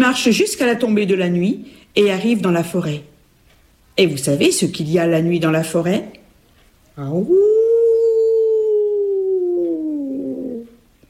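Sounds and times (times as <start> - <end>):
speech: 0.1 - 3.1, 4.0 - 6.2, 7.0 - 7.6
wolf howling: 7.2 - 10.8.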